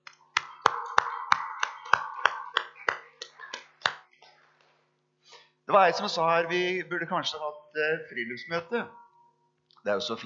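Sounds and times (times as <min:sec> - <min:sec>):
small group clapping: 0:00.0 - 0:04.7
speech: 0:05.7 - 0:09.0, 0:09.8 - 0:10.2.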